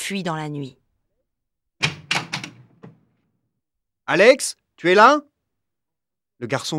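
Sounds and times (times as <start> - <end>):
speech: 0.1 - 0.8, 4.1 - 5.3, 6.4 - 6.7
wooden clunks and knocks of a door: 1.8 - 3.2
wooden door opening and shutting: 1.8 - 3.2.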